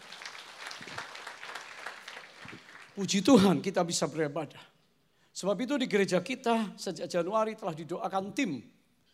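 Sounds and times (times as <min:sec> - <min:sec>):
audience applause in a large room: 0:00.0 - 0:03.0
speech: 0:03.0 - 0:04.8, 0:05.4 - 0:08.8.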